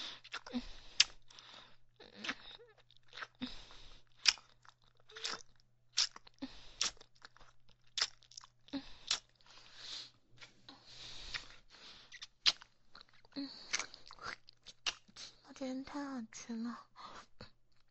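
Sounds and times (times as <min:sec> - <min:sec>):
chewing and crunching of glutinous rice cake: 0:00.1 - 0:09.7, 0:11.2 - 0:15.5
speech: 0:16.2 - 0:16.9.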